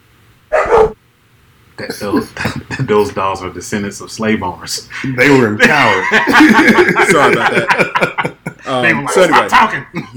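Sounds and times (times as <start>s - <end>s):
dog barking: 0.5s - 1.0s
speech: 1.8s - 10.1s
laughter: 1.9s - 3.4s, 4.9s - 10.1s.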